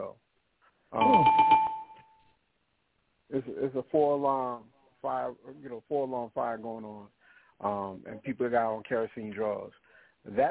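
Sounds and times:
bell struck rapidly by a host at a live show: 1.0 - 2.0
speech: 3.4 - 10.5.

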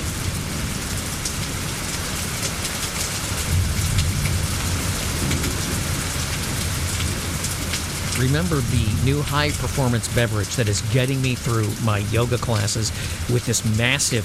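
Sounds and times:
heavy rain hissing in a summer storm: 0.0 - 14.2
low roll of distant thunder in a summer storm: 3.4 - 9.8
speech: 8.2 - 14.2.

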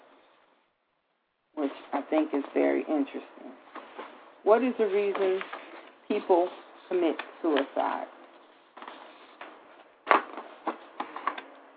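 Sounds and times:
speech: 1.6 - 3.6, 4.4 - 8.2
paper rattling and crinkling: 4.8 - 11.5.

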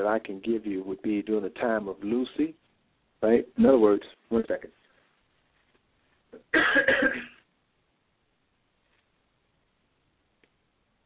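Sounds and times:
speech: 0.0 - 2.6, 3.2 - 4.8
harsh cough: 6.4 - 7.4
throat clearing: 6.4 - 7.4.

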